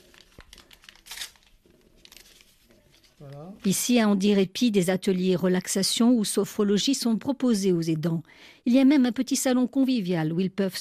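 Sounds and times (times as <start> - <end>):
paper being torn into small pieces: 0.0 - 3.4
speech: 3.2 - 10.7.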